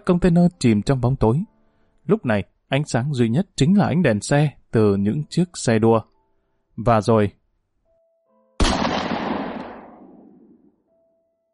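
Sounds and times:
speech: 0.0 - 1.5, 2.1 - 6.1, 6.8 - 7.4
gunshot echoing over a container yard: 8.6 - 10.7.

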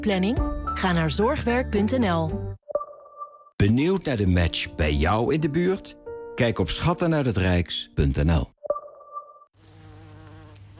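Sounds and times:
speech: 0.0 - 2.5, 3.6 - 8.6
bees buzzing during a neighbourhood bee count: 9.6 - 10.7.

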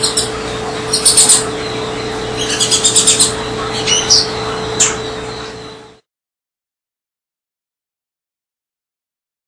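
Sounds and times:
double-collared seedeater singing: 0.0 - 6.0
steady low electrical hum: 0.0 - 6.1.

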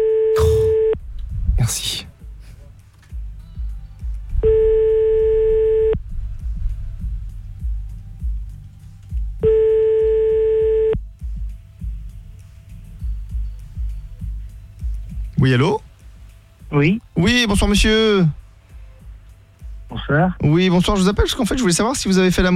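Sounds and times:
constant low rumbling background: 0.0 - 22.5
speech: 1.7 - 2.1, 15.4 - 15.8, 16.7 - 18.4, 20.1 - 22.5
telephone ringback tone before a call is answered: 4.5 - 6.0, 9.4 - 11.0.

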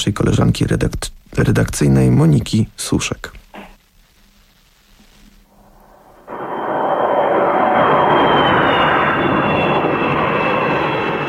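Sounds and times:
speech: 0.0 - 3.4
private jet flying overhead above Glasgow: 5.5 - 11.2.

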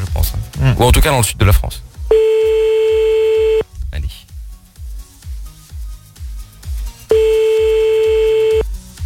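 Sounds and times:
speech: 0.6 - 2.2
low rhythmic thumping: 1.9 - 3.6, 7.1 - 8.6
telephone ringback tone: 2.1 - 3.6, 7.1 - 8.6.

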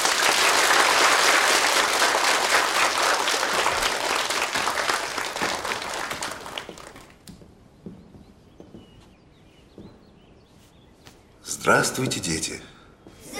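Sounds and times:
audience applause: 0.0 - 7.2
speech: 11.7 - 12.8.

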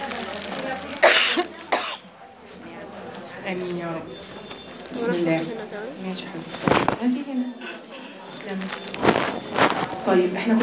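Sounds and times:
rough harsh coughs in a severe coughing fit: 1.0 - 2.1
speech: 3.5 - 4.3, 4.9 - 10.6.

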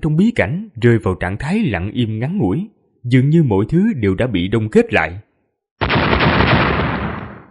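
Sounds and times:
speech: 0.0 - 5.2
series of explosions: 5.8 - 7.4.

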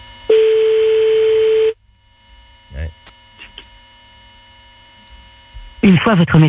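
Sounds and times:
unanswered telephone call's electronic ringing tone: 0.3 - 1.8
speech: 5.8 - 6.4.

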